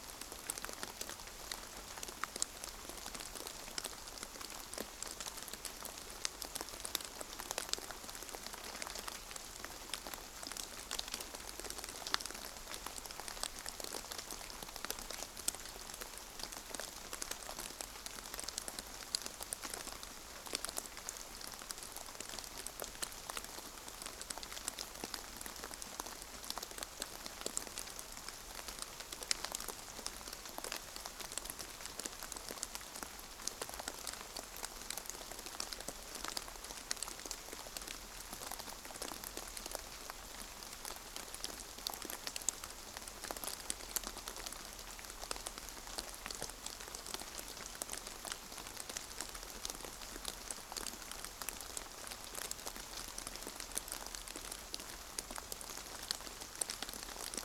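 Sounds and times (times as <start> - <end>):
light rain pattering after thunder: 0.0 - 57.4.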